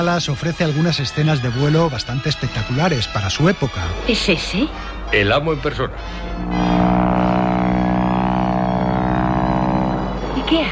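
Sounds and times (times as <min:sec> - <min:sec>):
speech: 0:00.0 - 0:06.8, 0:10.5 - 0:10.6
repaired airplane engine droning on a test flight: 0:05.8 - 0:10.6.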